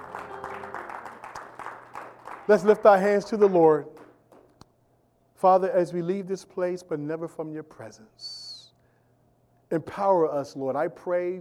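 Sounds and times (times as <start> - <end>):
low sustained organ tone: 0.0 - 1.2
audience clapping in praise: 0.0 - 4.6
speech: 2.5 - 4.0, 5.4 - 8.4, 9.7 - 11.3.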